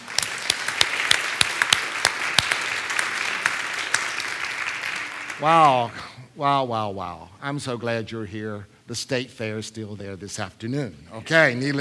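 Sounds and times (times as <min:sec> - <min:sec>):
crowd of people applauding: 0:00.0 - 0:05.9
speech: 0:05.4 - 0:11.7.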